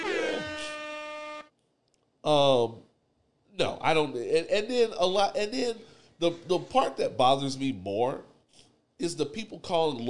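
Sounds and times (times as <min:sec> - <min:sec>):
loud brassy air horn blasts: 0:00.0 - 0:01.5
speech: 0:02.2 - 0:02.9, 0:03.6 - 0:08.3, 0:09.0 - 0:10.0.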